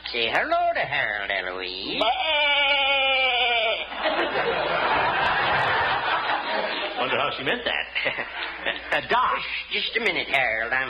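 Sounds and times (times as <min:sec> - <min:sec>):
speech: 0:00.1 - 0:02.5, 0:04.0 - 0:05.0, 0:07.0 - 0:10.8
sheep bleating while being clipped: 0:02.0 - 0:03.9
laughter: 0:02.7 - 0:09.5.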